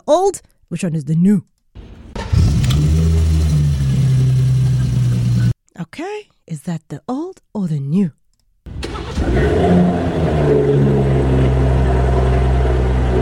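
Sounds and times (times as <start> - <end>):
speech: 0.1 - 1.5, 5.8 - 8.2, 9.3 - 10.9
car engine cranking, starting and idling: 1.8 - 5.6, 8.7 - 13.2.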